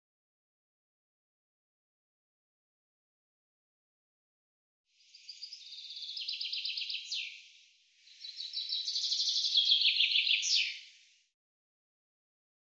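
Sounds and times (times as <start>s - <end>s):
common chaffinch song: 5.0s - 11.2s.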